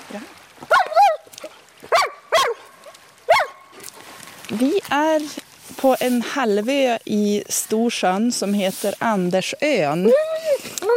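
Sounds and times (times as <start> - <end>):
speech: 0.1 - 0.4, 4.5 - 10.3
dog barking while doing tricks: 0.7 - 1.3, 1.9 - 3.8.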